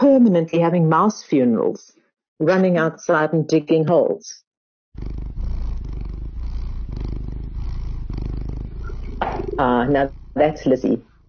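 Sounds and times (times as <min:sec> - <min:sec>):
speech: 0:00.2 - 0:04.4, 0:05.0 - 0:05.2, 0:09.6 - 0:11.2
very round domestic cat purring loudly: 0:05.0 - 0:11.2.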